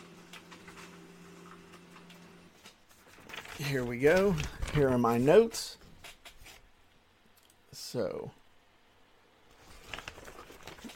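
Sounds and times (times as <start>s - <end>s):
printer under a desk printing notes: 0.0s - 2.6s
speech: 3.6s - 5.8s, 7.9s - 8.4s.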